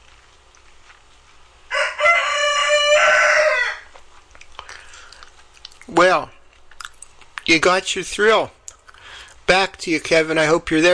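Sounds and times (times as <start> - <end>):
rooster crowing cock-a-doodle-doo in the morning over an open radio mic: 1.7 - 4.0
speech: 6.0 - 6.3, 7.5 - 8.6, 9.5 - 10.9.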